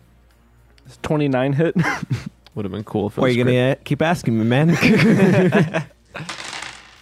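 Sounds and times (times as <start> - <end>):
speech: 0.9 - 6.3
laughter: 1.8 - 2.3, 4.6 - 6.3
pile of dice clattering across a hard surface: 6.2 - 7.0.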